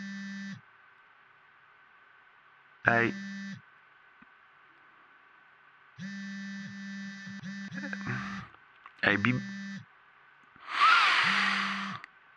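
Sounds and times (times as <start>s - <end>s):
phone vibrating with incoming text messages: 0.0s - 0.6s, 2.9s - 3.6s, 6.0s - 9.8s, 11.1s - 12.0s
speech: 2.8s - 3.3s, 9.1s - 9.5s.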